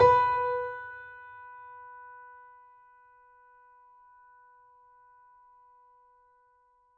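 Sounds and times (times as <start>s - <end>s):
mini grand piano playing: 0.0s - 1.0s.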